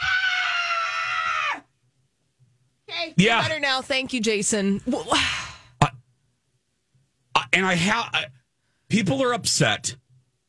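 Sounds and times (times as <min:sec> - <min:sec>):
person screaming under a desk: 0:00.0 - 0:01.7
speech: 0:03.0 - 0:05.4, 0:07.6 - 0:10.0.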